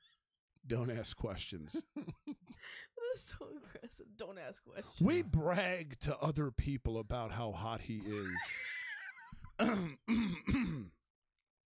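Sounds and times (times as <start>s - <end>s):
speech: 0.6s - 8.8s, 9.6s - 11.0s
laughter: 7.9s - 9.4s
person coughing: 9.6s - 11.0s.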